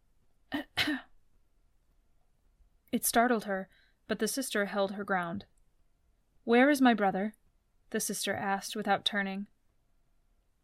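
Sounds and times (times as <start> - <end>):
person giving a soft polite cough and clearing throat: 0.6 - 1.1
speech: 2.9 - 5.5, 6.4 - 9.5.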